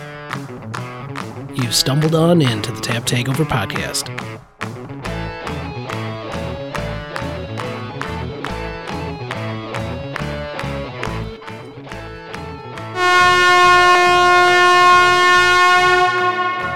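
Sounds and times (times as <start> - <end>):
rhythmic pulsing music: 0.0 - 16.7
speech: 1.6 - 4.5
air horn blast signaling festival start: 13.0 - 16.7.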